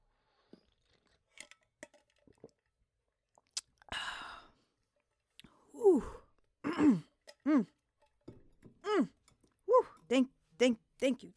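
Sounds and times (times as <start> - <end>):
wet mouth clicks of someone drinking water: 3.4 - 3.9
speech: 6.9 - 7.8, 10.1 - 11.3.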